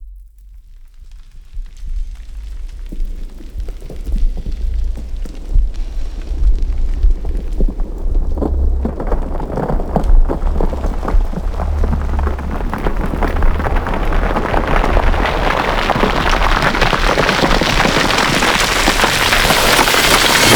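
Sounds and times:
riser firing debris: 4.5 - 20.5.

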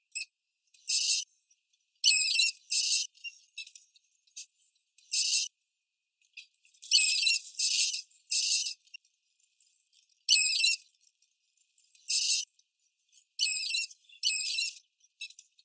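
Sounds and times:
brown rat Rattus norvegicus: 0.1 - 5.6, 6.2 - 15.6.

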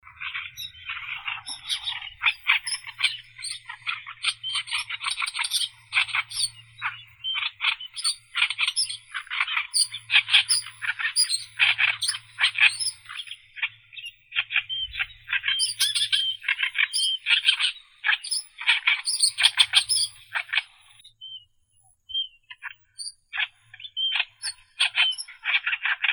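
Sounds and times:
oriental reed warbler Acrocephalus orientalis singing: 0.0 - 21.0, 22.1 - 25.7.

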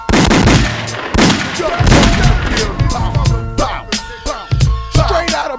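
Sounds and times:
rapid gunshots: 0.0 - 5.4.

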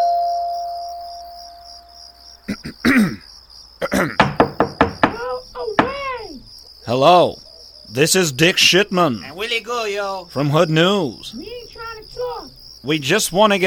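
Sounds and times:
steady insect-like buzz: 0.0 - 13.6
speech: 2.5 - 4.3, 6.9 - 11.5, 12.8 - 13.6
sharp knocks on a front door: 4.1 - 6.4.

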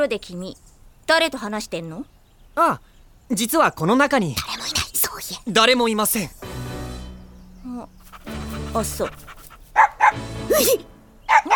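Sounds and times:
speech: 0.0 - 6.5, 7.6 - 8.0, 8.7 - 9.3, 10.1 - 11.5
dog barking: 8.1 - 11.5.

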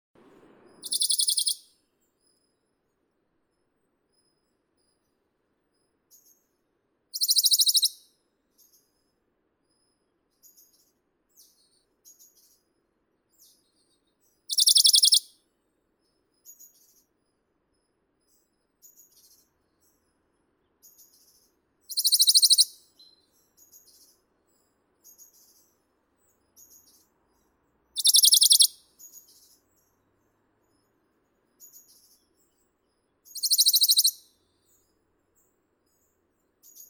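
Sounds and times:
Bonelli's warbler Phylloscopus bonelli singing: 0.8 - 1.6, 7.2 - 8.0, 14.5 - 15.3, 21.9 - 22.8, 28.0 - 29.5, 33.3 - 34.2.

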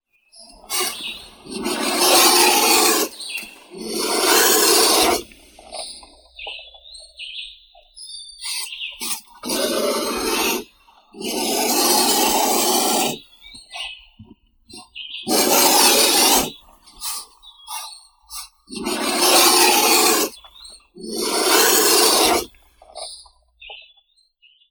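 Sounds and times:
black vulture Aegypius monachus: 0.5 - 6.6, 8.4 - 13.3, 15.3 - 20.4, 21.0 - 23.2.

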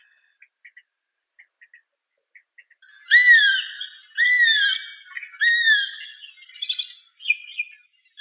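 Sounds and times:
Circus aeruginosus calling: 2.8 - 7.6.

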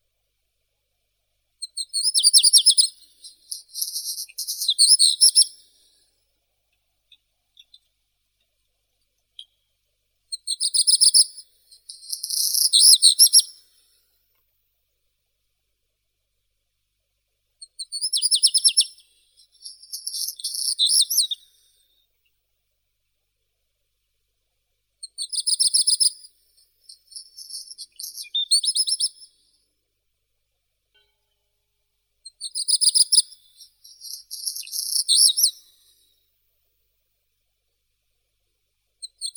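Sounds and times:
black redstart Phoenicurus ochruros: 1.7 - 5.6, 10.4 - 13.6, 17.7 - 21.4, 26.8 - 29.3, 32.4 - 35.6.

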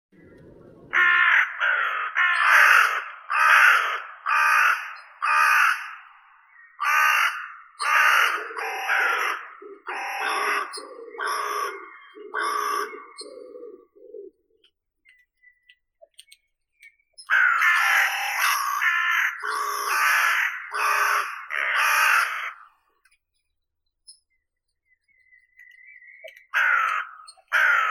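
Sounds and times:
Carrion crow Corvus corone calling: 0.2 - 14.6, 17.2 - 23.0, 25.2 - 27.8.

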